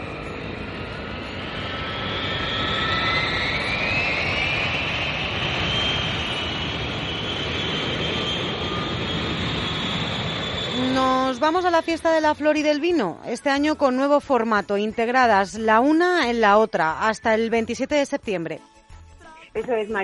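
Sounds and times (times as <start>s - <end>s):
airplane taking off: 0.0s - 13.3s
speech: 11.0s - 18.7s, 19.6s - 20.0s.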